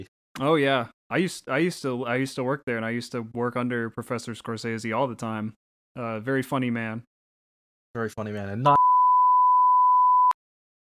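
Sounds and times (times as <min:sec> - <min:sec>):
speech: 0:00.0 - 0:07.1, 0:07.9 - 0:08.8
steady high-pitched censor bleep: 0:08.7 - 0:10.4.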